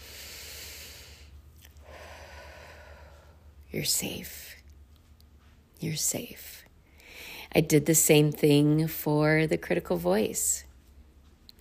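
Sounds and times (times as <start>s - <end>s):
slow deep breathing: 0.0s - 3.6s, 6.8s - 7.5s
speech: 3.7s - 4.6s, 5.8s - 6.6s, 7.5s - 10.7s.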